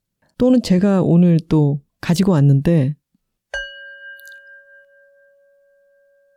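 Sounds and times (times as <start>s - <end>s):
speech: 0.4s - 3.0s
singing bowl struck and ringing: 3.5s - 6.3s.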